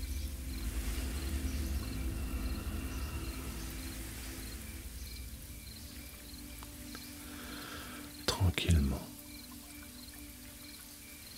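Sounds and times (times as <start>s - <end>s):
low rumble: 0.0s - 8.3s
crickets chirping: 0.0s - 11.3s
gentle fine rain falling: 0.0s - 11.3s.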